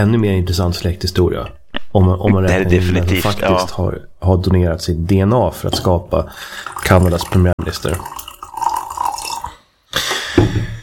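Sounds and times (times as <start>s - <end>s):
speech: 0.0s - 8.2s
coffee pouring into a cup: 6.5s - 9.6s.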